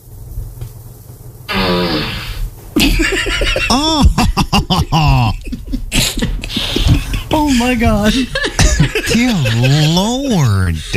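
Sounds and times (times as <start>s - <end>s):
low hum: 0.0s - 10.9s
fart sound effect from a small smart speaker: 1.5s - 2.5s
laughter: 2.8s - 10.9s
speech: 7.6s - 10.9s.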